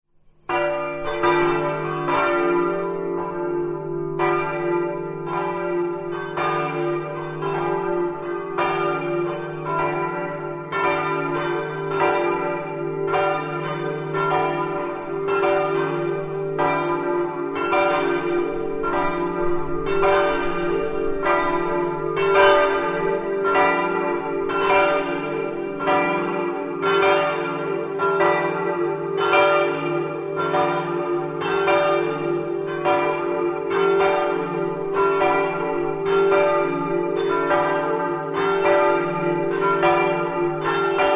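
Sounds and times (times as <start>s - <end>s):
church bells ringing in Rosazzo: 0.5s - 41.1s.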